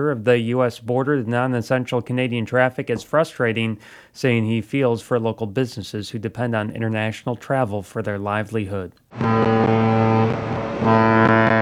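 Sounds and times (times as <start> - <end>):
speech: 0.0 - 9.8
664-foot upbound freighter deep horn sounding a warning to a sailboat on the St. Clair River: 9.1 - 11.5.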